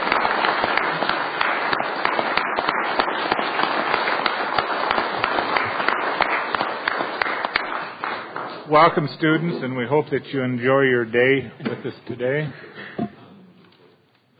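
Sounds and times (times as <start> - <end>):
applause in a state legislature's Senate chamber welcoming visiting students: 0.0 - 8.6
speech: 8.7 - 12.8.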